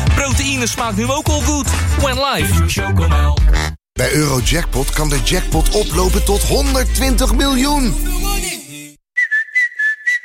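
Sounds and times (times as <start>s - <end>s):
speech: 0.3s - 8.5s
person whistling a tune: 9.2s - 10.2s.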